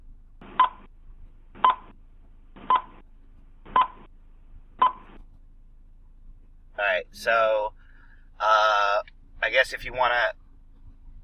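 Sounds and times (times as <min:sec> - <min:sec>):
spoiler countdown sound effect of electronic beeps with clicks: 0:00.6 - 0:00.9, 0:01.6 - 0:01.9, 0:02.6 - 0:03.0, 0:03.7 - 0:04.1, 0:04.8 - 0:05.1
speech: 0:07.0 - 0:07.7, 0:09.5 - 0:10.4.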